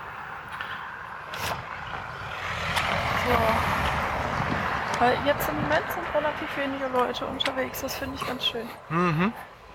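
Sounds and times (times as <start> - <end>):
tire rumble: 0.0 - 9.7
car engine passing: 0.1 - 7.2
speech: 5.0 - 9.5.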